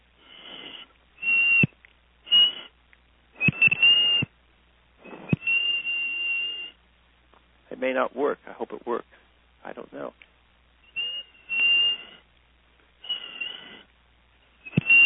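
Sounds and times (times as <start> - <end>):
person whistling a simple tune: 1.2 - 1.7, 2.3 - 2.7, 3.4 - 4.3, 5.0 - 6.8, 10.9 - 12.2, 13.0 - 13.7, 14.6 - 15.0
speech: 7.8 - 10.3.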